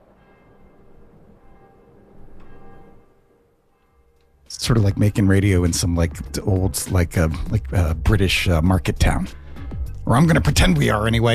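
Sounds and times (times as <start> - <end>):
church bells ringing: 0.0 - 7.9
speech: 4.6 - 9.4, 10.1 - 11.3.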